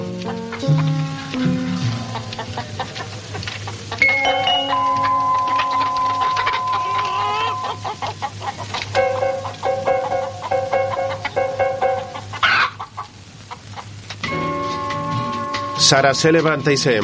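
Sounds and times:
chickens clucking in a henhouse: 0:00.0 - 0:16.6
rustle: 0:00.1 - 0:15.8
speech: 0:15.9 - 0:17.0.

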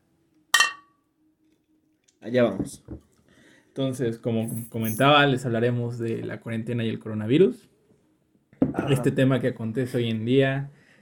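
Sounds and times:
glasses clinking in a toast: 0:00.6 - 0:01.0
speech: 0:02.2 - 0:03.0, 0:03.8 - 0:07.7, 0:08.8 - 0:10.8.

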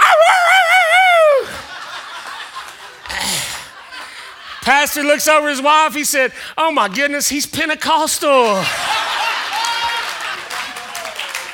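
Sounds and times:
man imitating a dog howling: 0:00.0 - 0:01.6
laughter: 0:01.3 - 0:04.7, 0:08.6 - 0:10.8
speech: 0:04.8 - 0:09.0.

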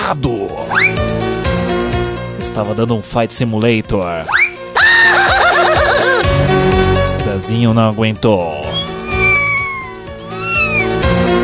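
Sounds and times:
speech: 0:00.1 - 0:01.3, 0:02.4 - 0:04.5, 0:06.4 - 0:08.6
laughter: 0:04.8 - 0:06.2
cat meowing: 0:08.6 - 0:11.3.

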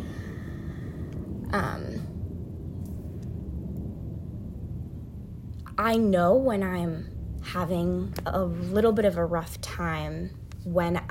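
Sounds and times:
airplane flying overhead: 0:00.0 - 0:07.8
speech: 0:01.5 - 0:01.9, 0:05.8 - 0:11.0.

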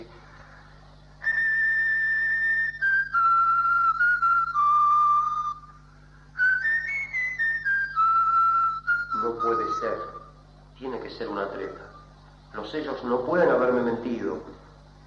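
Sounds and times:
person whistling a tune: 0:01.2 - 0:05.8, 0:06.4 - 0:10.3
speech: 0:12.7 - 0:14.6.

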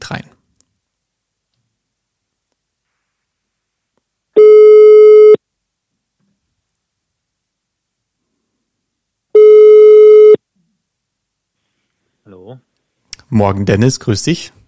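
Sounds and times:
speech: 0:00.1 - 0:00.3, 0:12.5 - 0:12.7, 0:13.3 - 0:14.6
phone ringback tone beeps: 0:04.4 - 0:05.4, 0:09.4 - 0:10.4.

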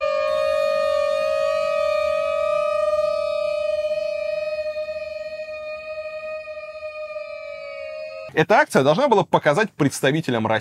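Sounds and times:
air raid siren through a large loudspeaker outside a house in Oslo: 0:00.0 - 0:08.4
speech: 0:08.4 - 0:10.5.

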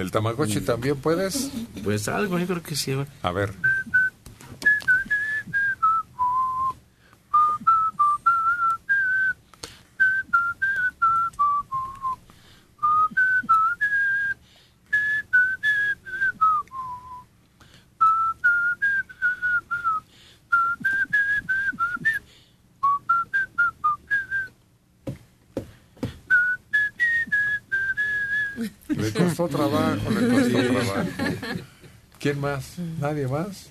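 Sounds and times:
speech: 0:00.0 - 0:03.7, 0:29.4 - 0:30.3, 0:32.2 - 0:33.6
person whistling a lilting tune: 0:03.6 - 0:09.4, 0:10.0 - 0:12.2, 0:12.8 - 0:17.3, 0:18.0 - 0:24.6, 0:26.3 - 0:28.7
laughter: 0:28.6 - 0:31.9.

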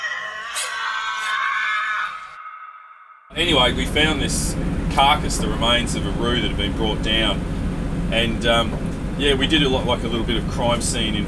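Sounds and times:
Tasmanian devil blood-curdling scream: 0:00.0 - 0:03.3
speech: 0:03.4 - 0:11.2.

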